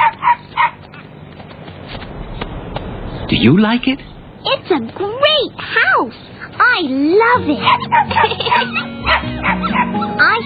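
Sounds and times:
puppies yapping: 0.0 - 1.1, 7.6 - 10.4
low murmur: 1.5 - 5.6
speech: 3.3 - 10.4
laughter: 8.1 - 8.9.

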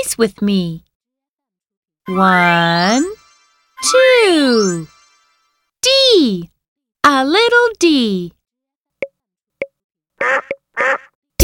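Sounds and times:
speech: 0.0 - 0.8, 2.1 - 3.2, 3.8 - 5.0, 6.2 - 8.4, 10.2 - 11.1
raspy nasal duck quacking: 10.2 - 11.2.

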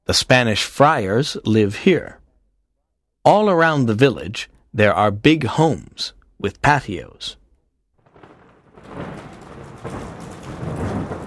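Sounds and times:
speech: 0.1 - 2.2, 3.2 - 7.4
deep rolls of thunder in a village in Southern California: 8.0 - 11.2
heavy rain in a night-time storm in a village in Southern California: 8.0 - 11.2.

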